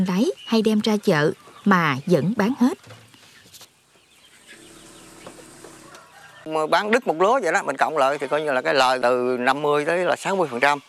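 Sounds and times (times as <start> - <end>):
speech: 0.0 - 3.0, 6.4 - 10.8
chickens clucking inside a coop on a meat-chicken farm: 0.0 - 10.8
rustling and chicken wing flutters: 2.8 - 6.4.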